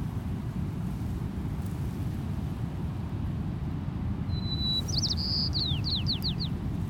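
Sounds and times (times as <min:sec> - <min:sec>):
steady roar of wind on coastal dunes: 0:00.0 - 0:06.8
white-crowned sparrow singing on coastal dunes: 0:04.3 - 0:06.6.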